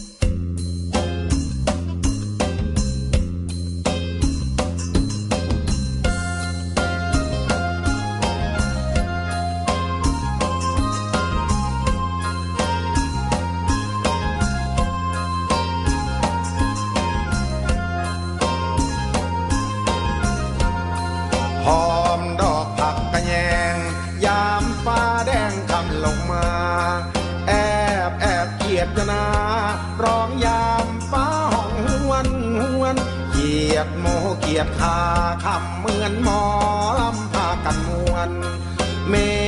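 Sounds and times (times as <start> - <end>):
song with full band and driving beat: 0.4 - 39.4.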